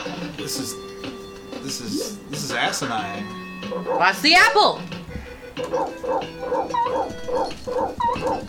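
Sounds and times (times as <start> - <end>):
speech: 0.4 - 5.0, 5.6 - 8.4
dog in a video game yelping and whimpering: 5.7 - 8.4.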